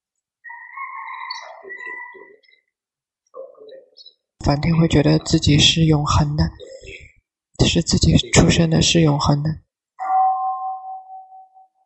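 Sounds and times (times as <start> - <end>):
speech: 1.6 - 2.7, 3.3 - 6.8, 7.7 - 9.6
bell struck once ringing a clear mid-pitched tone: 10.0 - 11.8.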